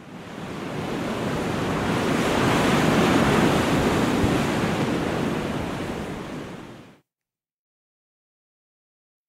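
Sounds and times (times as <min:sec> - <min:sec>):
sea waves breaking on the shore: 0:00.0 - 0:07.0.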